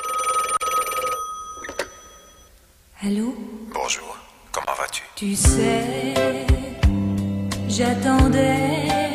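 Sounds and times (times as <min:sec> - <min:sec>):
telephone bell ringing at the opening of a French song: 0:00.0 - 0:02.5
speech: 0:03.0 - 0:06.6, 0:07.7 - 0:09.0.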